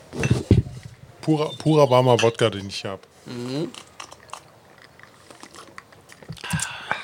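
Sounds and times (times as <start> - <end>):
speech: 0.1 - 0.5, 1.3 - 3.9
chewing with wet lip smacks in a garden: 3.6 - 6.8.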